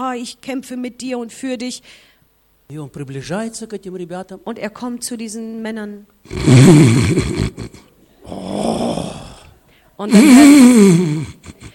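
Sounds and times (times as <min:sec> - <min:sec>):
speech: 0:00.0 - 0:02.1, 0:02.7 - 0:08.8, 0:10.0 - 0:11.3
voice imitating loud snoring of men: 0:06.3 - 0:11.7.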